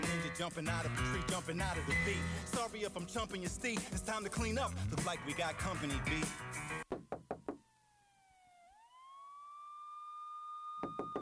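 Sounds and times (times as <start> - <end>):
speech: 0.4 - 6.8
sharp loud knocking on a door: 6.9 - 7.6, 10.8 - 11.1
rising and falling siren tone: 7.2 - 11.1.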